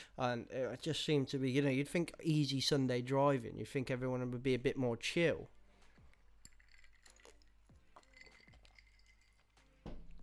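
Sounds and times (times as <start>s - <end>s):
speech: 0.2s - 5.6s
light clinks of glass: 6.3s - 10.2s
rum sloshing in a glass: 6.3s - 10.2s.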